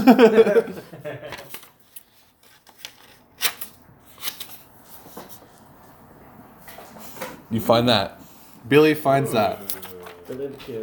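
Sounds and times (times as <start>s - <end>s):
laughter: 0.0s - 1.6s
speech: 0.1s - 1.4s, 7.5s - 9.7s, 10.3s - 10.8s
papers rustling as someone leafs through a stack: 1.2s - 6.0s, 9.3s - 10.8s
paper crinkling: 1.3s - 5.6s, 9.5s - 10.8s.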